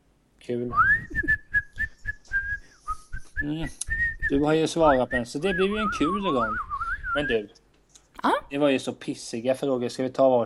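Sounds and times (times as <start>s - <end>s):
speech: 0.5s - 1.4s, 3.4s - 7.6s, 8.2s - 10.4s
breathy attempted whistling by someone who cannot whistle: 0.7s - 7.4s.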